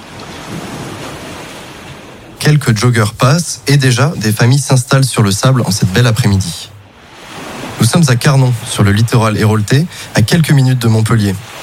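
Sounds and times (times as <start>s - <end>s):
ocean surf breaking on a beach: 0.0s - 11.6s
wind buffeting: 0.0s - 11.6s
speech: 2.5s - 6.8s, 7.8s - 11.6s.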